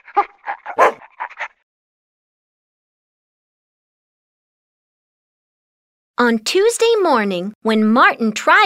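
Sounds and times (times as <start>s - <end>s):
dog barking: 0.0s - 1.5s
speech: 6.2s - 8.6s.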